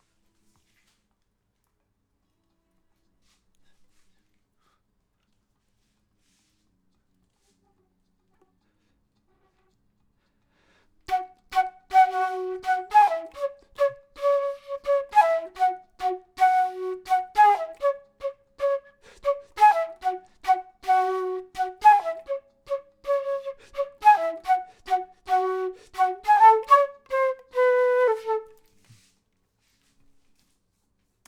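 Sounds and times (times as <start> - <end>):
flute intro melody: 11.1 - 28.8.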